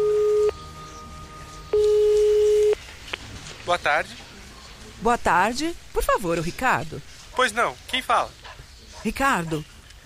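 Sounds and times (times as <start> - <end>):
telephone ringing tone calling a company's phone number: 0.0 - 0.6, 1.7 - 2.8
speech: 3.7 - 4.3, 5.0 - 8.4, 9.0 - 9.7.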